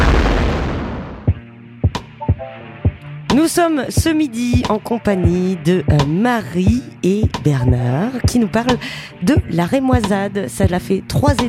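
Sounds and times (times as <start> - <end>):
loud deep rumbling explosion blast: 0.0 - 1.4
sharp punchy hits with a brief ringing tone: 0.0 - 2.1
speech: 3.4 - 11.4.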